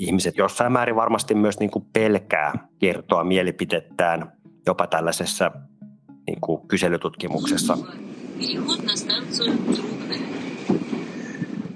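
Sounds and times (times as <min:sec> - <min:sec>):
speech: 0:00.0 - 0:05.7, 0:06.3 - 0:09.9
metro train rumbling along the track: 0:07.2 - 0:11.7
metro train wheels squealing: 0:09.7 - 0:11.7.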